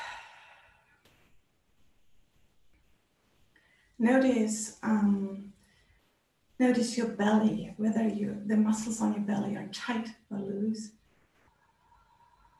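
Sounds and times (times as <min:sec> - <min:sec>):
deep breath in and out during a guided relaxation exercise: 0:00.0 - 0:01.2, 0:11.5 - 0:12.5
speech: 0:04.0 - 0:05.5, 0:06.6 - 0:11.0.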